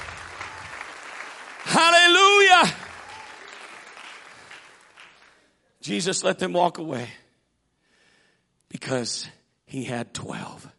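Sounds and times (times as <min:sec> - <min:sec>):
church congregation clapping hands during a service: 0:00.0 - 0:05.6
speech: 0:05.8 - 0:07.2, 0:08.9 - 0:10.7.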